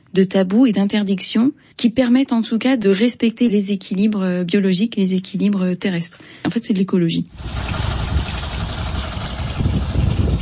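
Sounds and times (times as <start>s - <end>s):
speech: 0.2s - 8.2s
boat engine idling: 7.4s - 10.4s.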